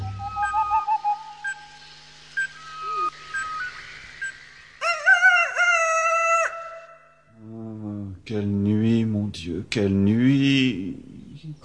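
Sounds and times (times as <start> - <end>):
owls hooting at night in a forest: 0.0 - 1.8, 2.4 - 7.0
speech: 8.3 - 8.7, 9.4 - 11.6.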